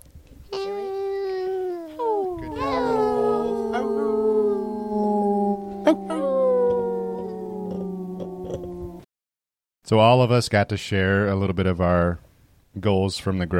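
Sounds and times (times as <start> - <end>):
people howling like wolves: 1.4 - 9.1
sharp whoop: 1.9 - 9.0
speech: 9.9 - 12.2, 12.8 - 13.5.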